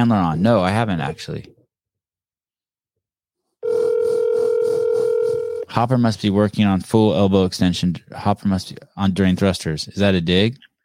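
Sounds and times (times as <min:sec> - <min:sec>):
speech: 0:00.0 - 0:01.6, 0:05.8 - 0:10.7
phone line ringing tone: 0:03.6 - 0:05.7.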